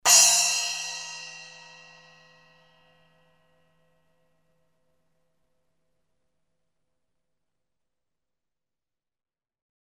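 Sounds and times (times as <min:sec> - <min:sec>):
9in custom hybrid splash cymbal: 0:00.1 - 0:02.6.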